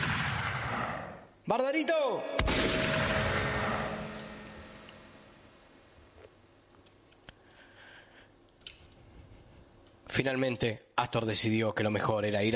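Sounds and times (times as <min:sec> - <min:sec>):
carbine shot fired into the air: 0:00.0 - 0:01.2, 0:02.4 - 0:05.6
speech: 0:01.5 - 0:02.9, 0:10.2 - 0:12.5.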